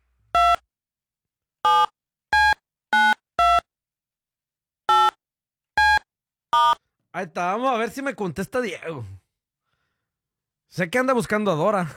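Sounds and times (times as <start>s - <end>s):
phone keypad dialing beeps while calling someone: 1.7s - 3.6s, 4.9s - 5.2s, 5.8s - 6.8s
speech: 6.5s - 9.2s, 10.7s - 11.9s.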